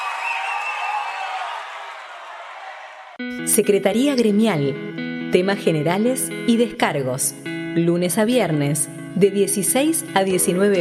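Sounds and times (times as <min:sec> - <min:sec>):
audience applause: 0:00.0 - 0:03.2
faint cheering: 0:00.0 - 0:03.2
speech: 0:03.2 - 0:10.7.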